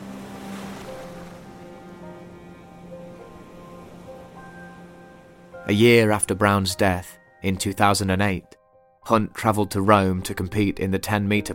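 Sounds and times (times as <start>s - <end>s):
sea surf washing on a beach: 0.0s - 6.5s
speech: 5.6s - 11.5s.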